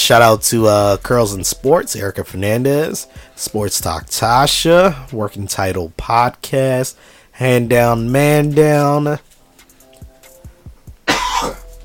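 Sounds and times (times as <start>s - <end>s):
speech: 0.1s - 9.3s
loud harsh cough: 11.0s - 11.8s
low throat-clearing grunts: 11.1s - 11.7s.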